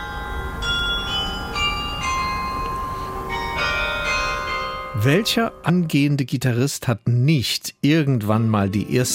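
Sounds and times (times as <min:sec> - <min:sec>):
town hall carillon of tuned bells playing a slow melody: 0:00.0 - 0:05.8
speech: 0:05.0 - 0:09.1.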